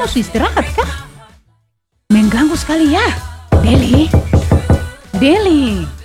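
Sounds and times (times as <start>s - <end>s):
speech: 0.0s - 1.0s, 2.3s - 4.4s, 5.2s - 6.0s
knocking on a boarding-house room door: 3.5s - 5.5s.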